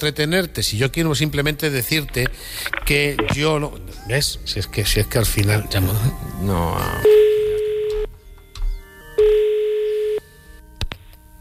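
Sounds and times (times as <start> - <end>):
speech: 0.0 - 7.2
telephone busy tone after dropped call: 6.8 - 8.1, 9.2 - 10.2.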